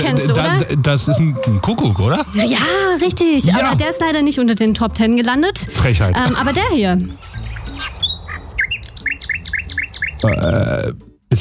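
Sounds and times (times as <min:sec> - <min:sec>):
speech: 0:00.0 - 0:07.4, 0:10.2 - 0:11.3
nightingale singing: 0:07.1 - 0:10.8.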